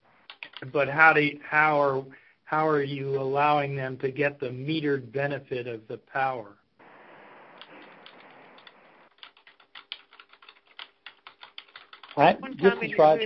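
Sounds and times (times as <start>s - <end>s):
rapid keyboard typing: 0.2s - 0.8s, 7.6s - 13.2s
speech: 0.6s - 6.6s, 12.2s - 13.2s
speech-like sound: 12.2s - 13.2s.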